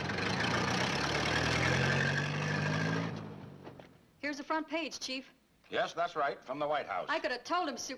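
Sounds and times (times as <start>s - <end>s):
car engine almost 20 years old idling: 0.0s - 4.0s
speech: 4.4s - 7.9s.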